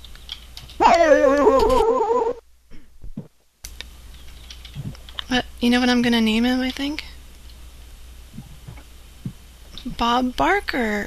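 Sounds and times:
dog whimpering in a high-pitched whine: 0.8 - 2.4
speech: 5.3 - 7.1, 10.0 - 11.0.

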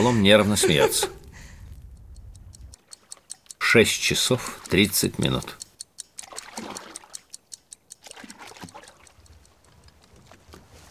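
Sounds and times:
speech: 0.0 - 1.2, 3.7 - 5.6
laughter: 0.0 - 1.3
paddle strokes of soldiers rowing rubber boats: 2.7 - 10.8
water trickling and splashing: 2.8 - 10.8.

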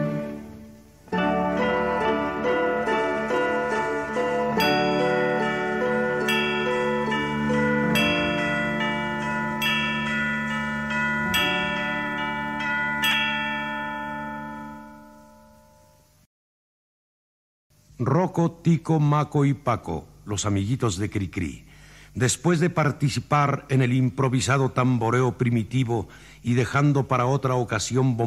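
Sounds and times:
rich harmonic backing of a children's song: 0.0 - 16.2
bells ringing in a children's song: 1.2 - 16.1
speech: 18.4 - 28.2.

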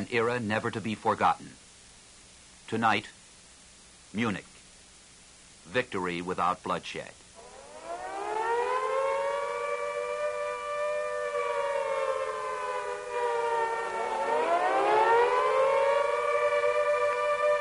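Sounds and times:
speech: 0.0 - 1.6, 2.7 - 3.2, 4.1 - 4.5, 5.6 - 7.2
World War II-era air raid siren wailing: 7.4 - 17.6.

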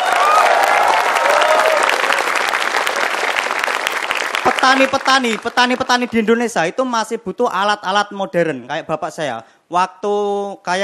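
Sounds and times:
audience applause: 0.0 - 6.1
speech: 4.6 - 10.8.

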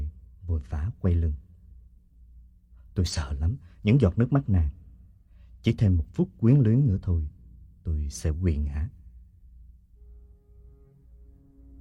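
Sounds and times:
speech: 0.6 - 1.4, 3.0 - 4.8, 5.6 - 9.0
faint train whistle: 9.9 - 11.7.

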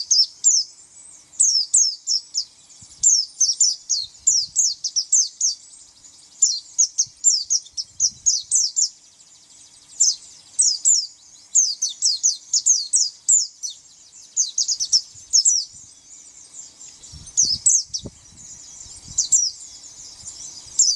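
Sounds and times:
White-eye giving high sharp chirps: 0.0 - 20.9.

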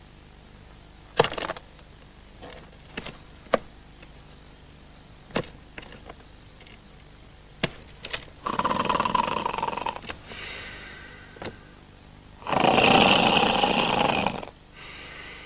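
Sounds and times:
drunk man snoring on a couch: 8.4 - 11.8, 12.4 - 15.4.

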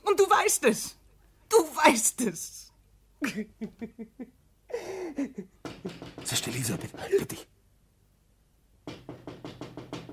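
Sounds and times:
speech: 0.2 - 1.0, 1.6 - 2.6, 3.2 - 7.6
knocking on a window: 5.6 - 7.4, 8.8 - 10.1.

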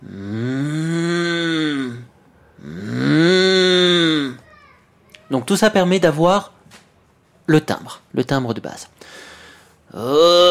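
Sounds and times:
human voice imitating a mooing cow: 0.0 - 4.4, 9.9 - 10.4
speech: 5.3 - 6.5, 7.5 - 9.3, 9.9 - 10.4.

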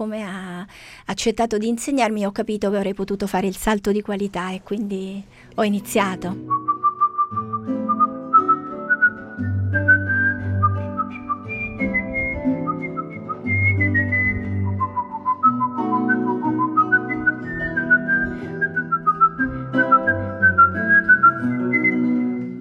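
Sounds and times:
speech: 0.0 - 6.6
person whistling a melody: 6.5 - 22.6.

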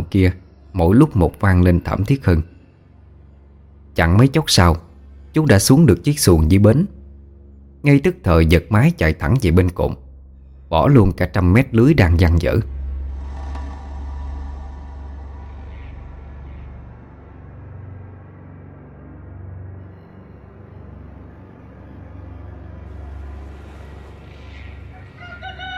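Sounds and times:
steady low hum: 0.0 - 25.7
speech: 0.1 - 2.5, 4.0 - 7.0, 7.8 - 10.0, 10.7 - 12.8
rooster crowing at dawn in a riverside village: 24.5 - 25.7.

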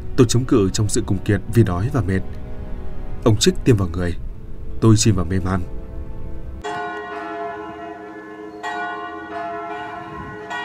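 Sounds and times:
speech: 0.2 - 2.4, 3.2 - 4.2, 4.8 - 5.8
church bell ringing next door: 5.7 - 10.6.

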